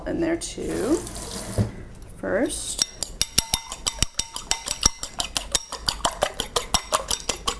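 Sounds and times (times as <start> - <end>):
speech: 0.1 - 2.9
fork tapping a bowl while whisking two eggs with salt: 2.8 - 7.5.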